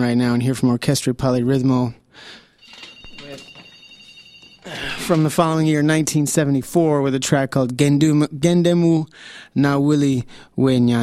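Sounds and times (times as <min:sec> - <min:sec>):
speech: 0:00.0 - 0:02.4, 0:04.7 - 0:11.0
telephone ringing from a listener calling in: 0:02.3 - 0:06.2.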